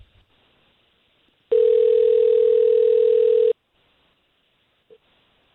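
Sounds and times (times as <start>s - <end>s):
steady buzzing telephone dial tone: 1.5s - 3.5s.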